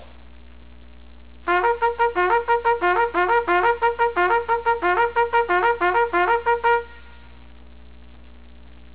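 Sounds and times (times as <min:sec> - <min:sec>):
bugle call: 0:01.5 - 0:07.3.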